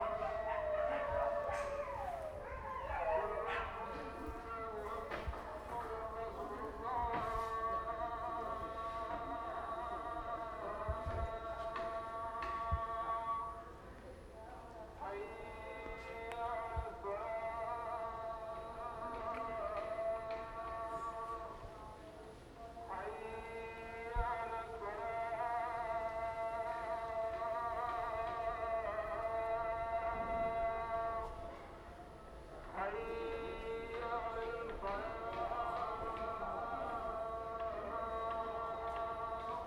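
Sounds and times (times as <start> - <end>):
dogs at shipyards in South India: 0.0 - 4.5
mosque call at shipyards in South India: 0.0 - 39.6.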